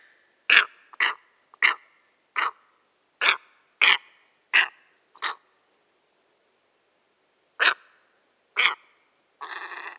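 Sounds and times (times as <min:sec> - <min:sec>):
steppe eagle uttering rasping barks: 0:00.5 - 0:01.8, 0:02.4 - 0:02.6, 0:03.2 - 0:05.4, 0:07.6 - 0:07.9, 0:08.6 - 0:08.8.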